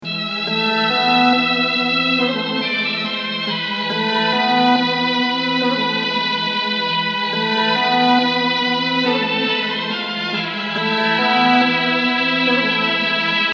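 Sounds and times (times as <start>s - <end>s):
melody: 0.1s - 13.5s.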